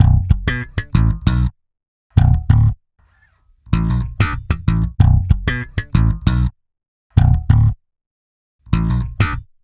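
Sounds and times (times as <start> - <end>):
pop rock electric bass line in B flat minor: 0.0 - 1.5, 2.2 - 2.8, 3.7 - 6.5, 7.2 - 7.8, 8.7 - 9.4.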